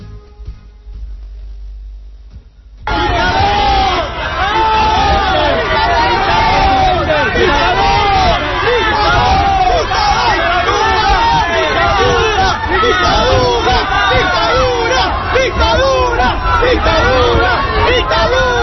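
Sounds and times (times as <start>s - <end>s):
dense crowd shouting insults and jeering at a bookshop: 2.8s - 18.6s.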